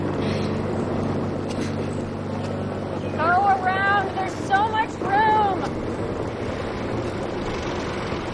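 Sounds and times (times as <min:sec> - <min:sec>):
tractor engine rumbling: 0:00.0 - 0:08.3.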